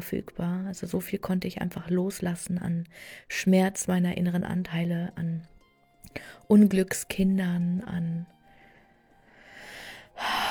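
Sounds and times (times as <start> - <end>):
speech: 0.0 - 5.5, 6.1 - 8.4, 10.2 - 10.4
person taking a deep breath in: 8.5 - 10.4.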